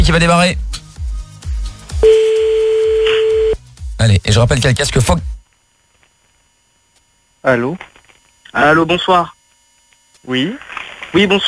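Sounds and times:
speech: 0.1 - 0.8, 4.0 - 5.3, 7.4 - 7.9, 8.5 - 9.4, 10.2 - 11.4
telephone ring tone on a call line: 2.0 - 3.6.

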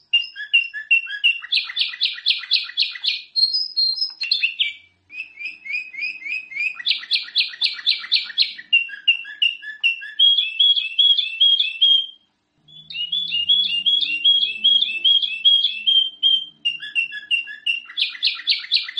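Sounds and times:
Sooty-headed bulbul singing: 0.0 - 18.9
faint low hum: 4.1 - 18.5.

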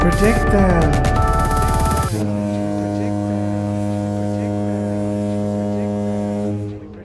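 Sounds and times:
speech: 0.2 - 1.1
long foghorn blast: 2.1 - 7.0.

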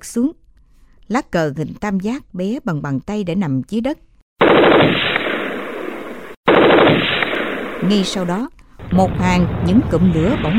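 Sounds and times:
speech: 0.0 - 0.4, 1.1 - 5.1, 7.8 - 10.5
submachine gun firing from a firing mount in a battle: 4.4 - 8.4.

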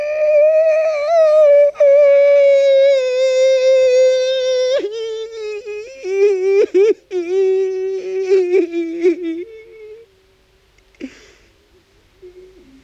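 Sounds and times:
man weeping with a long wailing cry: 0.0 - 10.1.

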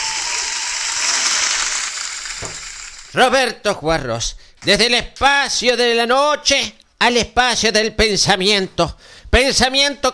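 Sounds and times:
audience applause: 0.0 - 3.0
speech: 3.1 - 10.1.

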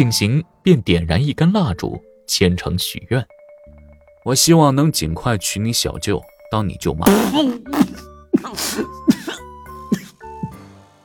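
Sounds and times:
speech: 0.0 - 3.4, 4.2 - 9.1
man coughing after spraying out a mouthful of liquor: 7.1 - 10.3
man clearing throat: 7.1 - 10.6.

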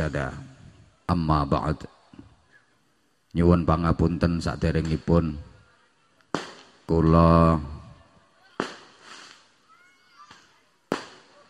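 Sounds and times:
speech: 0.0 - 0.5, 1.1 - 2.0, 3.3 - 5.5, 6.3 - 7.8
firecrackers going off: 6.2 - 11.4.

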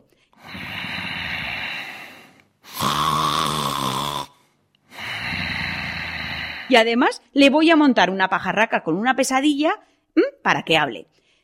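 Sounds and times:
person snoring with rasping, rattling, throaty breaths: 0.4 - 6.8
speech: 6.7 - 11.1.

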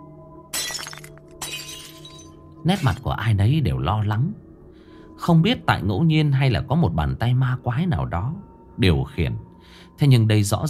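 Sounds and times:
flower vase falling and shattering on the ground: 0.5 - 3.0
speech: 2.6 - 4.4, 5.3 - 10.6.

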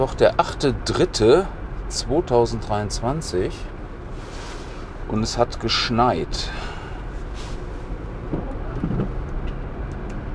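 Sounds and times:
speech: 0.0 - 3.8, 5.1 - 6.7
car driving on a slippery snow-covered road: 0.0 - 10.3.

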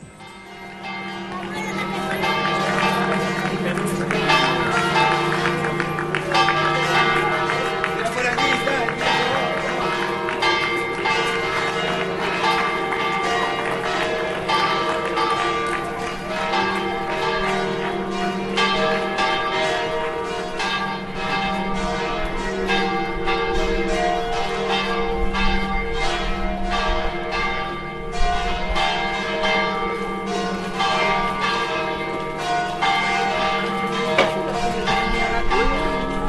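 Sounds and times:
busy outdoor noise: 0.0 - 36.2
cathedral church bells ringing in Las Palmas, Canary Islands: 0.0 - 36.2.

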